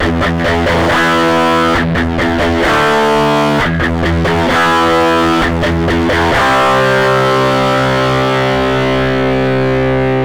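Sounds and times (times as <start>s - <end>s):
DI and amp samples: 0.0s - 10.2s.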